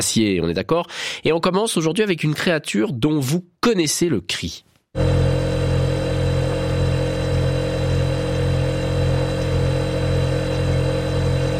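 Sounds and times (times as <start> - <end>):
speech: 0.0 - 5.4
refrigerator humming with faint mechanical buzz: 5.0 - 11.5.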